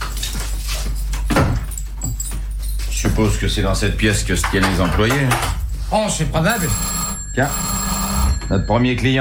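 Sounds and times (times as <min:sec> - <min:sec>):
keys jangling: 0:00.2 - 0:03.1
speech: 0:03.0 - 0:07.8, 0:08.5 - 0:09.1.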